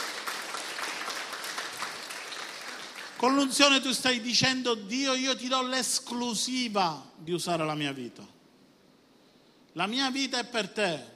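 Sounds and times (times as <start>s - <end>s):
crowd applauding: 0.0s - 3.6s
speech: 3.2s - 8.4s, 9.8s - 11.1s.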